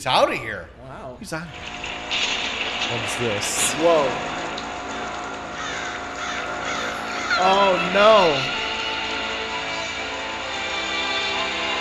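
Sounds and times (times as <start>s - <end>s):
speech: 0.0s - 4.4s, 7.4s - 8.6s
dense steady outdoor noise: 1.5s - 11.7s
crow cawing: 4.6s - 9.4s.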